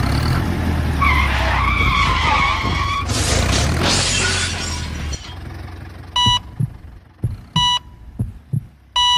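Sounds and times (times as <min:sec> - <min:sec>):
tires screeching: 0:00.0 - 0:05.6
cyclist colliding with a tractor in a violent crash: 0:02.0 - 0:05.4
debris scattering: 0:02.0 - 0:05.5
glass shattering: 0:03.0 - 0:05.4
steady electronic beeps: 0:06.2 - 0:06.7, 0:07.6 - 0:08.0, 0:09.0 - 0:09.1
slow heartbeat thumps: 0:06.2 - 0:09.1.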